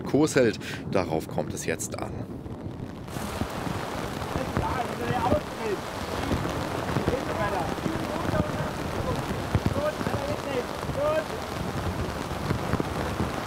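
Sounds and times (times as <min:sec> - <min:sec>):
speech: 0:00.0 - 0:02.5
rushing storm wind: 0:00.8 - 0:13.4
hail pelting a boat deck: 0:02.8 - 0:13.4.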